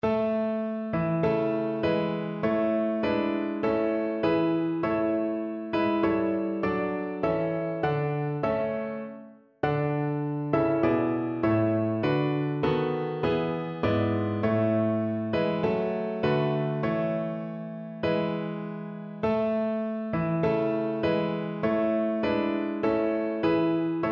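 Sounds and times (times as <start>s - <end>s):
national anthem played on piano: 0.0s - 24.0s.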